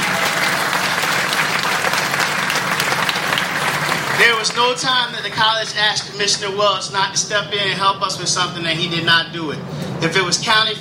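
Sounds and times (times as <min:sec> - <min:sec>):
large audience applause: 0:00.0 - 0:05.5
speech: 0:04.2 - 0:10.7.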